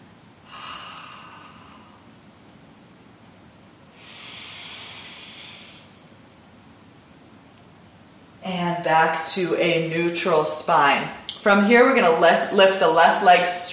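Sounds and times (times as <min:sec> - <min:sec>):
deep yoga breathing: 0:00.4 - 0:02.2, 0:03.9 - 0:06.0
speech: 0:08.5 - 0:13.7.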